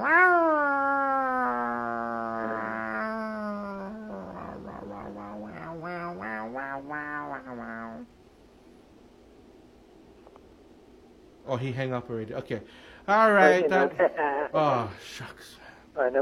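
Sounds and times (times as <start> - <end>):
human voice imitating a cat's yowl: 0.0 - 8.1
speech: 11.5 - 16.2.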